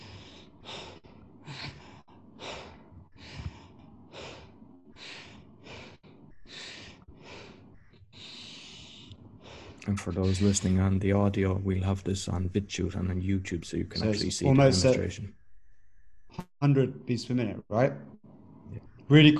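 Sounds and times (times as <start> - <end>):
person demonstrating rapid stressed breathing: 0.0 - 13.1
speech: 9.8 - 15.4, 16.6 - 19.3.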